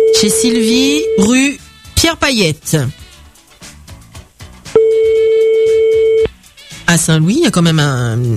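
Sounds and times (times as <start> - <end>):
telephone ringback tone on an outgoing call: 0.0 - 1.5, 4.8 - 6.3
speech: 0.2 - 3.0, 6.9 - 8.3.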